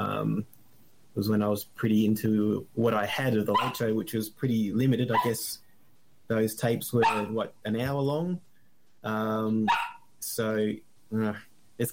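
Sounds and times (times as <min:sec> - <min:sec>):
speech: 0:00.2 - 0:00.6, 0:01.2 - 0:05.6, 0:06.3 - 0:11.9
dog barking: 0:03.5 - 0:03.9, 0:05.1 - 0:05.4, 0:07.0 - 0:07.4, 0:09.7 - 0:10.1.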